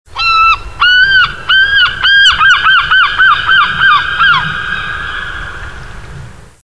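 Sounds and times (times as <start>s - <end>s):
gull calling: 0.1s - 6.0s.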